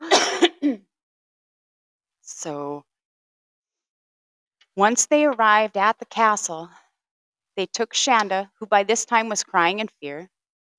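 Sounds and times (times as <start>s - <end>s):
loud rough cough: 0.0s - 0.8s
raspy throat clearing: 0.0s - 0.8s
speech: 2.3s - 2.9s, 4.8s - 6.8s, 7.6s - 10.4s.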